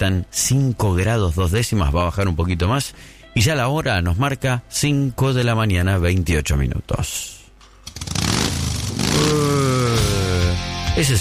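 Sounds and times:
speech: 0.0 - 7.4, 9.2 - 10.1, 11.0 - 11.1
motorcycle engine starting and revving: 7.8 - 10.5.

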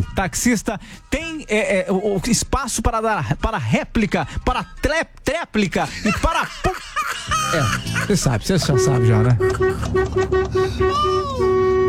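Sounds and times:
speech: 0.2 - 11.8
laughter: 5.7 - 10.1
car horn honking in traffic: 8.5 - 11.8.

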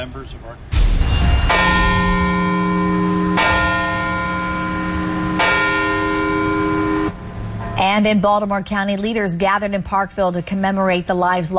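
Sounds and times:
speech: 0.0 - 1.8, 7.8 - 11.5
large deep church bells tolling with sustained overtones: 1.0 - 8.2.

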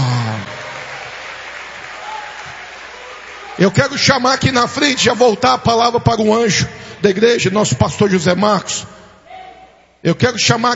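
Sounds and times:
church congregation clapping during a worship service: 0.0 - 5.5
speech: 3.6 - 9.0, 10.0 - 10.7.

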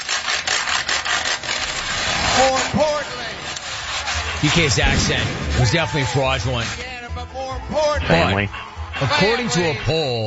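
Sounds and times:
wooden spoons scraped across a washboard: 0.0 - 7.0
speech: 2.4 - 3.2, 4.4 - 10.2
laughter: 7.8 - 10.1.

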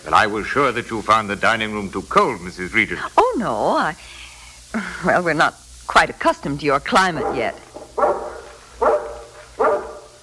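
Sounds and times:
speech: 0.0 - 8.2
large mountain-breed guard dog barking: 7.0 - 10.2.

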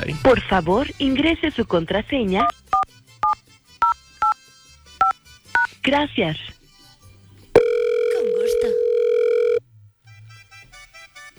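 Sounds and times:
speech: 0.2 - 2.7, 5.8 - 6.6
telephone keypad tones while a number is dialed: 3.2 - 4.4, 7.6 - 9.6
faint low hum: 7.6 - 10.0.

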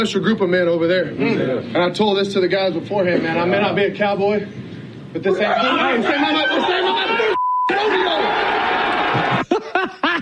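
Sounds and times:
speech: 0.0 - 4.6, 5.2 - 9.3
laughter: 5.8 - 10.2
censor beep tone covering a word: 7.4 - 7.8.

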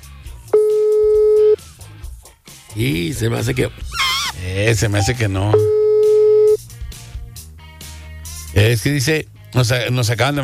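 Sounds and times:
telephone busy signal on an outgoing call: 0.6 - 1.6, 5.0 - 6.6
speech: 2.8 - 5.8, 8.6 - 10.4.

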